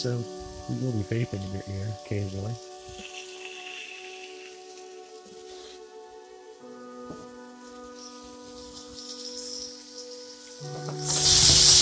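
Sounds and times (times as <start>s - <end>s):
speech: 0.0s - 3.0s
food sizzling in an old frying pan on an electric burner: 2.6s - 5.5s, 7.8s - 11.7s.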